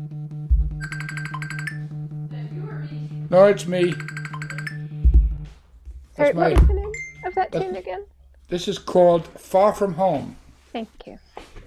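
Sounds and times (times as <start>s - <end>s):
phone ringing with high electronic trill: 0.8s - 2.1s, 3.8s - 5.0s
speech: 3.3s - 4.1s, 6.2s - 6.8s, 7.4s - 11.6s
dull thump: 5.0s - 6.9s.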